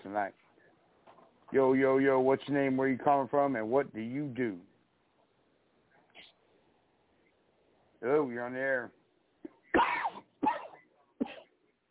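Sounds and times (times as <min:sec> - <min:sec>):
speech: 0:00.1 - 0:00.5, 0:01.5 - 0:04.7, 0:08.0 - 0:09.0
harsh broadband coughs: 0:09.4 - 0:11.6.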